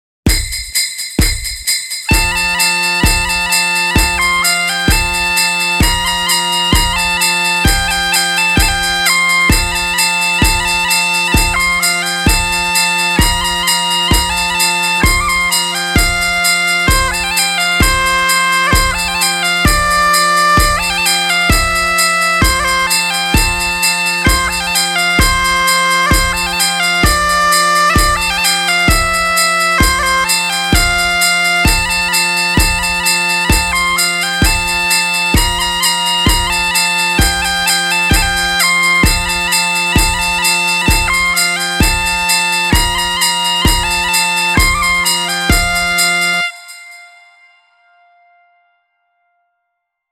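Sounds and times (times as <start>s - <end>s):
bagpipe solo of a Christmas song: 2.1s - 48.3s.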